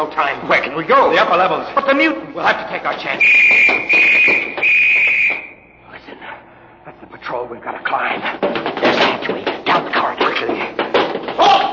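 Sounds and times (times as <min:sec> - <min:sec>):
speech: 0:00.0 - 0:05.1, 0:06.8 - 0:10.6
movement: 0:00.0 - 0:06.4, 0:07.6 - 0:11.7
voices: 0:00.0 - 0:11.7
loud shrill alarm ringing: 0:03.2 - 0:05.8.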